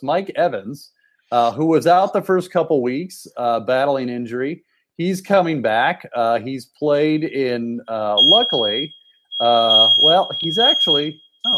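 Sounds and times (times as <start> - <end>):
speech: 0.0 - 11.5
smoke detector alarm with a high-pitched electronic tone: 8.1 - 11.5.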